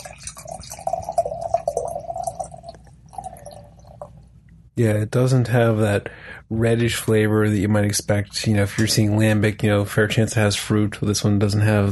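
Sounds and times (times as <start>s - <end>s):
beer glugging from a bottle into a glass: 0.0s - 4.2s
speech: 4.8s - 11.9s.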